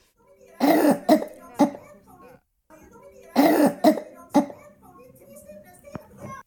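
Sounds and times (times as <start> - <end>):
voice imitating a five-year-old girl's deep phlegmy cough: 0.6 - 1.8, 3.4 - 4.6.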